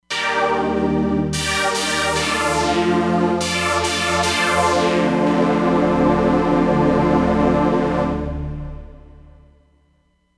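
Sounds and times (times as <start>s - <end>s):
Moon Synth on a Roland Fantom XR: 0.0s - 9.7s.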